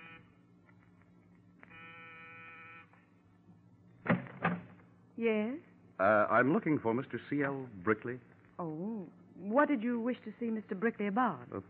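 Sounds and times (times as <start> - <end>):
apartment door buzzer: 0.0 - 0.3, 1.6 - 3.0
faint room hum: 0.0 - 11.6
sharp clunks: 4.0 - 4.8
speech: 5.2 - 11.6.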